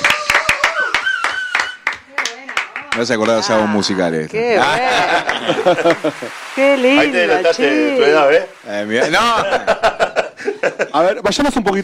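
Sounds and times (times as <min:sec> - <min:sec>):
applause as quick rhythmic hand claps: 0:00.0 - 0:03.4, 0:05.2 - 0:06.3
speech: 0:03.0 - 0:11.8
laughter: 0:04.6 - 0:08.2, 0:08.8 - 0:11.2.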